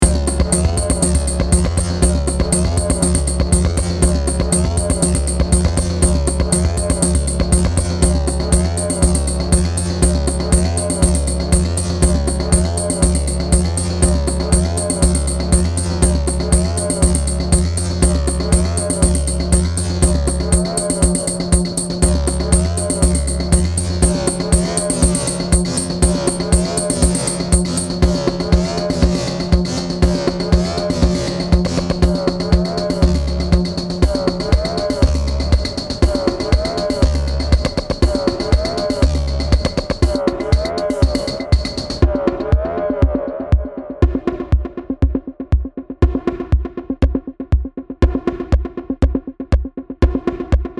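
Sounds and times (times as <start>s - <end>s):
CR-78 drum machine rhythm: 0.0s - 50.7s.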